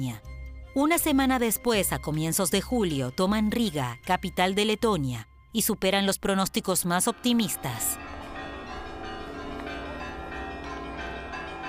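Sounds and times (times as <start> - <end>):
speech: 0.0 - 8.0
church bells ringing: 6.6 - 11.6.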